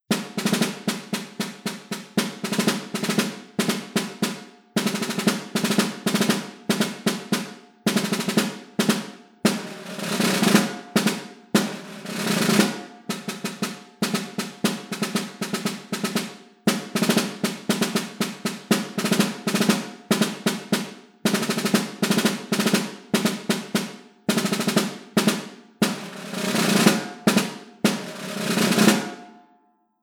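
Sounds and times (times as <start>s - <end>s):
snare drum: 0.0s - 29.4s.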